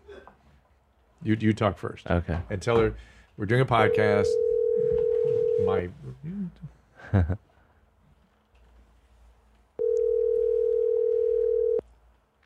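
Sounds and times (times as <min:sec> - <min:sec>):
speech: 0:01.2 - 0:04.4, 0:05.6 - 0:07.5
phone ringback tone on an outgoing call: 0:03.9 - 0:05.8, 0:09.8 - 0:11.8.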